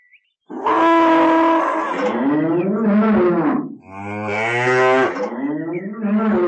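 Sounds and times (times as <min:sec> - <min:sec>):
cows mooing: 0:00.5 - 0:05.5.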